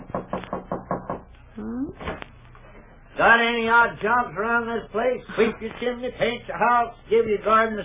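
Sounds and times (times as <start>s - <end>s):
knocks on the back door of a house in the evening: 0.0s - 1.3s
speech: 1.6s - 2.3s, 3.2s - 7.8s.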